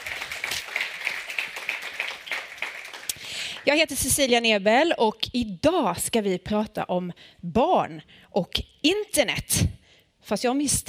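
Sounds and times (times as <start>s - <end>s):
audience applauding: 0.0s - 3.7s
speech: 3.6s - 10.8s.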